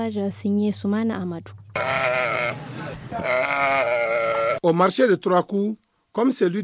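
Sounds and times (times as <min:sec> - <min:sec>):
speech: 0:00.0 - 0:04.0, 0:04.6 - 0:06.6
sheep bleating at a livestock market: 0:01.8 - 0:04.6.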